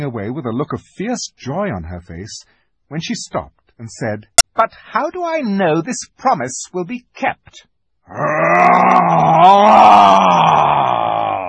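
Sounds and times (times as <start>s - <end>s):
speech: 0.0s - 11.0s
lion roaring: 8.1s - 11.4s.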